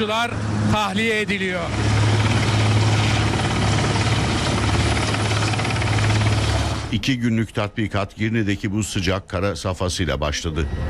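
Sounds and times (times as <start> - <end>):
speech: 0.0 - 2.0, 6.9 - 10.8
helicopter rotor and engine hum at a search-and-rescue exercise in the Five Finger Mountains: 0.0 - 7.1.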